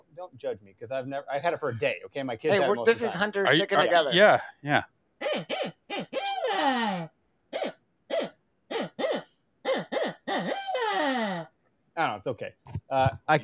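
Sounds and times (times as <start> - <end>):
speech: 0.2 - 8.3, 11.2 - 13.4
laughter: 2.5 - 4.4
handheld hunting owl call being blown: 5.2 - 11.5.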